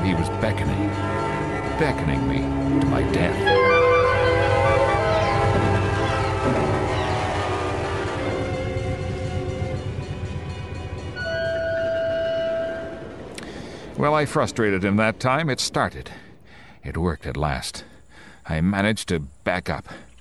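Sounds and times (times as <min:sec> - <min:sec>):
train whistle blasts: 0:00.0 - 0:10.3, 0:11.1 - 0:13.6
train rumbling: 0:00.0 - 0:18.5
speech: 0:00.1 - 0:01.2, 0:01.8 - 0:03.9, 0:14.0 - 0:16.2, 0:16.8 - 0:20.1.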